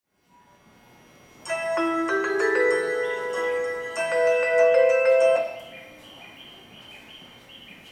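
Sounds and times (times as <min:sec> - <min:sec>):
melody at Kemigawahama: 0:01.4 - 0:06.4.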